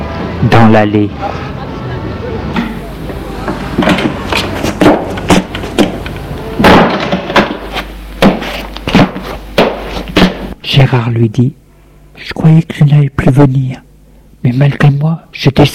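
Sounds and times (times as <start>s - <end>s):
low rumble of street or hallway noise: 0.0s - 15.7s
speech: 0.4s - 1.4s, 10.8s - 11.6s, 12.2s - 13.8s, 14.4s - 15.7s
heavy entrance door opening with clunks, latch clicks and thuds: 2.6s - 7.7s.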